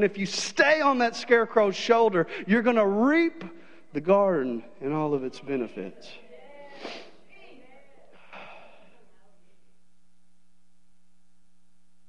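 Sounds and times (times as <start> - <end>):
speech: 0.0 - 6.2
forceful nose blows: 6.7 - 7.2.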